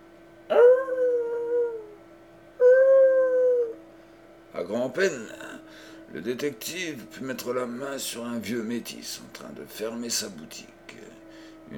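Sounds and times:
lost dog howling: 0.5s - 2.0s, 2.6s - 3.9s
speech: 4.6s - 5.4s, 6.1s - 11.1s.

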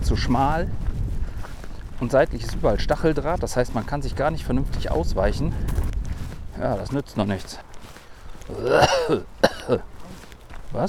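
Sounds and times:
speech: 0.1s - 0.8s, 2.0s - 5.8s, 6.6s - 7.7s, 8.5s - 10.0s
person coughing during a walk on a narrow path: 8.5s - 9.9s
throat clearing during a walk on a narrow path: 8.5s - 9.9s.

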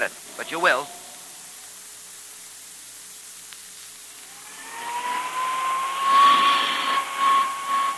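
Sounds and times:
speech: 0.0s - 1.0s
hand vacuum cleaner run over a coat: 4.3s - 7.9s.

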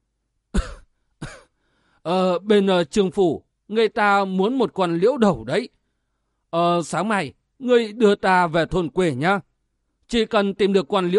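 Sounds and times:
old woman coughing and clearing her throat: 0.5s - 1.6s
speech: 2.0s - 5.8s, 6.5s - 9.5s, 10.1s - 11.1s.

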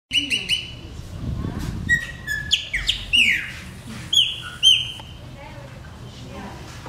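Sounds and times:
Chopi blackbird song of clear whistled notes: 0.1s - 0.8s, 1.9s - 5.1s.

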